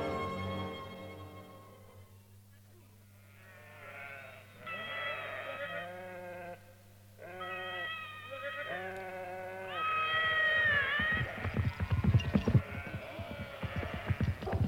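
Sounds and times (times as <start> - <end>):
flock of sheep bleating on a road: 3.1 - 14.5.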